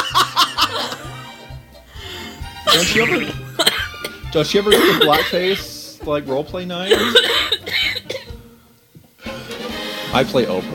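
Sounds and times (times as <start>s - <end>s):
laughter: 0.0s - 1.2s, 4.8s - 5.7s
loud coughing into a microphone: 2.7s - 5.4s, 6.9s - 8.4s
speech: 2.8s - 3.7s, 4.3s - 8.0s, 10.1s - 10.7s.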